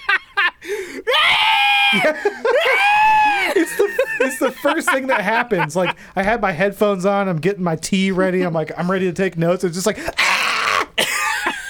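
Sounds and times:
short strained vocal cries: 0.0s - 4.1s, 10.0s - 11.6s
laughter: 0.0s - 6.4s, 9.9s - 11.6s
person screaming aggressively: 1.0s - 3.6s, 10.1s - 11.0s
speech: 2.0s - 2.9s, 3.7s - 10.2s.

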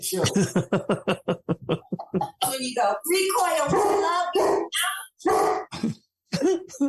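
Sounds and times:
speech: 0.0s - 1.3s, 2.6s - 4.6s
laughter: 0.2s - 2.4s
dogs trading short rough barks back and forth: 3.6s - 5.8s.

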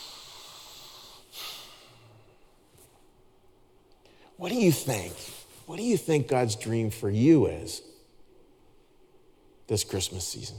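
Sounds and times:
person taking a big breath: 0.0s - 2.3s
steady low noise: 0.0s - 10.5s
speech: 4.4s - 7.9s, 9.7s - 10.5s.

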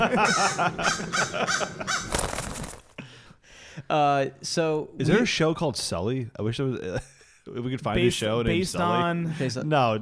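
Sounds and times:
speech: 0.0s - 2.2s, 3.8s - 9.9s
crows cawing in harsh overlapping calls: 0.1s - 2.9s
rustling noise: 2.0s - 3.0s.

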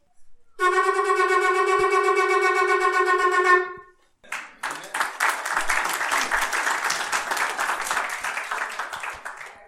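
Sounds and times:
shofar teruah blast from a ram's horn: 0.6s - 3.9s
crowd applauding: 4.3s - 9.6s.

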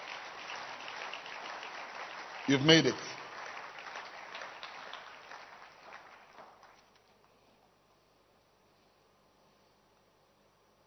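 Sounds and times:
audience clapping: 0.0s - 7.4s
speech: 2.5s - 3.1s.

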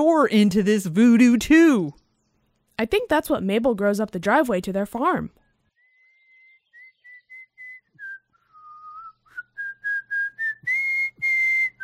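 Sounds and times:
speech: 0.0s - 2.0s, 2.8s - 5.4s
person whistling a tune: 5.9s - 11.8s.

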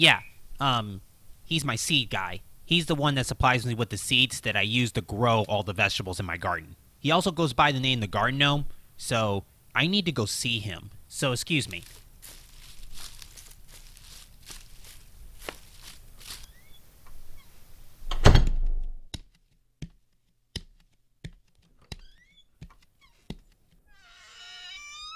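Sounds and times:
speech: 0.0s - 12.4s
fluttery chirping: 16.4s - 17.6s
loud thud: 18.1s - 19.1s
trapdoor in the floor creaking open: 23.9s - 25.1s.

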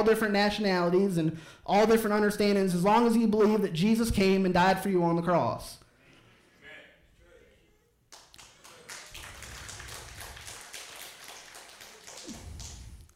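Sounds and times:
speech: 0.0s - 5.8s
crowd applauding: 8.1s - 13.1s.

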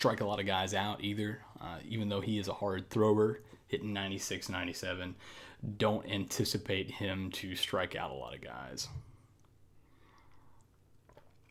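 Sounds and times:
speech: 0.0s - 9.1s
low steady hum: 0.0s - 11.4s
sipping and slurping beer: 10.2s - 11.4s.

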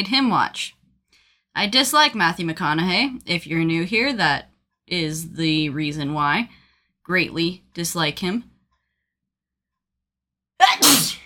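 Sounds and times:
speech: 0.0s - 0.8s, 1.6s - 8.5s, 10.6s - 11.2s
single loud sneeze: 10.6s - 11.2s.

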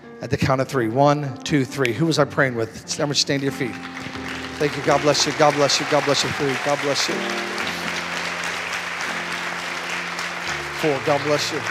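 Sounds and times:
speech: 0.2s - 7.6s, 10.8s - 11.7s
congregation clapping at a church service: 3.0s - 11.7s.

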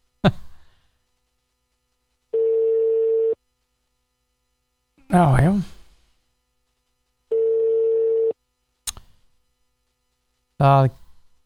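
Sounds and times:
telephone ringing down a live radio call line: 2.4s - 3.4s, 7.3s - 8.4s
speech: 5.1s - 5.8s, 10.6s - 11.0s.

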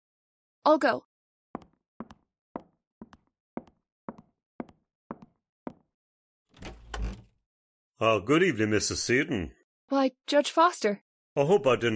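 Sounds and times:
speech: 0.6s - 1.1s, 8.0s - 11.9s
door opening with a scraping rush: 6.6s - 7.3s.

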